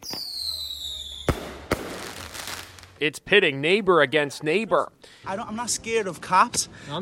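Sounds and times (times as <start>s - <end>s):
illegal firework descending whistle at night: 0.0s - 2.3s
illegal firework bangs at night: 0.0s - 3.0s
speech: 3.0s - 7.0s.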